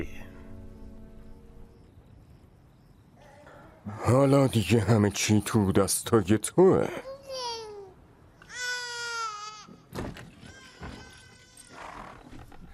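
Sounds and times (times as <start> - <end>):
speech: 4.1 - 7.5
baby crying: 7.0 - 11.8.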